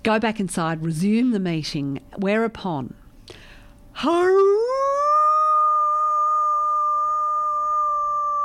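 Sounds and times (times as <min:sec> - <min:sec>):
speech: 0:00.0 - 0:03.4, 0:04.0 - 0:04.8
person imitating the howl of a dog tied up at a gate: 0:04.1 - 0:08.4.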